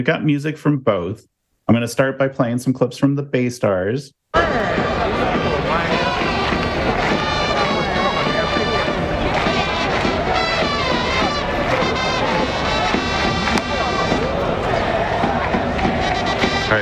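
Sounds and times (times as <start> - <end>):
speech: 0.0 - 6.2
brass fanfares in a baseball cheering section: 4.4 - 15.2, 15.8 - 16.8
baseball cheering section crowd chanting in unison: 4.4 - 16.8
pounding drums in a baseball cheering section: 4.4 - 16.8.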